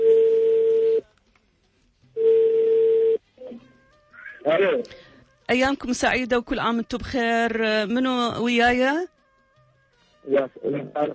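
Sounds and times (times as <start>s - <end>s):
telephone call ringback tones: 0.0s - 1.0s, 2.2s - 3.2s
speech: 4.5s - 9.1s, 10.2s - 11.1s.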